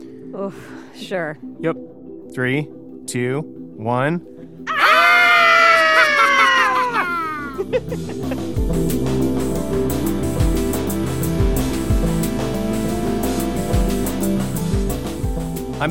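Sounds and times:
speech: 0:00.3 - 0:04.7, 0:07.6 - 0:09.9
group of people doing mock-spooky Halloween screams: 0:04.7 - 0:07.7
laughter: 0:05.5 - 0:08.6
rhythmic music with a steady beat: 0:07.6 - 0:15.8.

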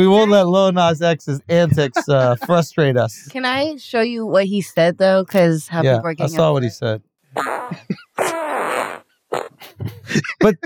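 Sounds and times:
speech: 0:00.0 - 0:08.4, 0:10.1 - 0:10.6
laughter: 0:01.3 - 0:03.1, 0:07.7 - 0:08.0, 0:09.6 - 0:10.6
loud long sputtering buzzy fart: 0:07.4 - 0:09.6.

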